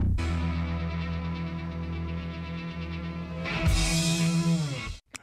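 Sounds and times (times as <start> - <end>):
rock song remix: 0.2 - 5.0.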